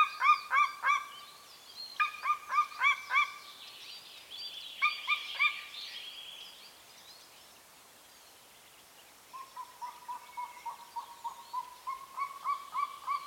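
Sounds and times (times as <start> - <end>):
Golden eagle Aquila chrysaetos calling in ringing yelps: 0.0 - 1.2, 2.0 - 3.4, 9.4 - 13.2.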